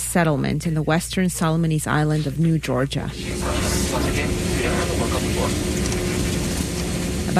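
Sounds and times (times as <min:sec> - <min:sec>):
speech: 0:00.1 - 0:06.0
small propeller plane engine droning in the cabin: 0:03.1 - 0:07.3.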